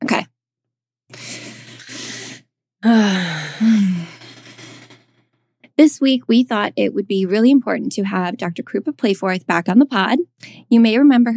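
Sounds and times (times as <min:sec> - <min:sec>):
deep breaths taken together: 0:01.2 - 0:04.3
voiced sighing groans: 0:02.8 - 0:04.3
speech: 0:05.8 - 0:11.3.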